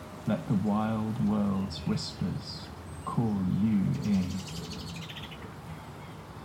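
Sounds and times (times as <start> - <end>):
low outdoor rumble: 0.0 - 6.4
speech: 0.2 - 4.8
mistle thrush alarm calls: 3.8 - 5.4.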